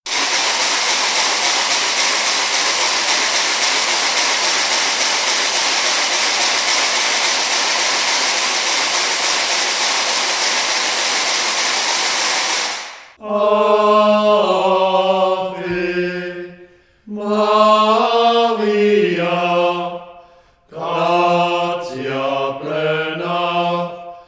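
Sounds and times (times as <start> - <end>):
ratchets rattling: 0.1 - 13.0
singing of a hymn: 13.2 - 20.0, 20.7 - 24.1.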